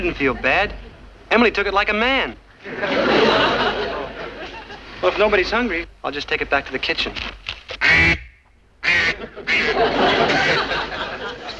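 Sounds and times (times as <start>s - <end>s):
laughter: 0.0s - 1.1s, 2.6s - 5.5s, 8.9s - 11.5s
speech: 0.0s - 3.6s, 5.0s - 8.2s
duck quacking: 7.8s - 10.8s.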